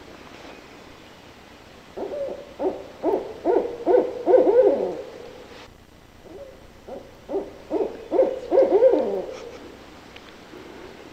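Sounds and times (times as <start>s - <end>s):
barred owl hooting throaty hoots: 2.0s - 5.5s, 6.2s - 9.8s.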